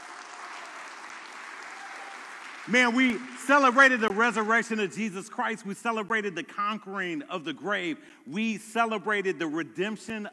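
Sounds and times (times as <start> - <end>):
audience clapping hands: 0.0 - 5.0
speech: 2.6 - 10.3.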